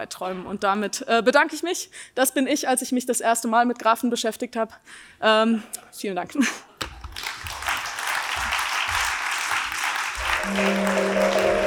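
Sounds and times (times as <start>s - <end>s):
speech: 0.0s - 6.7s, 10.5s - 11.0s
room full of people applauding: 7.1s - 11.6s.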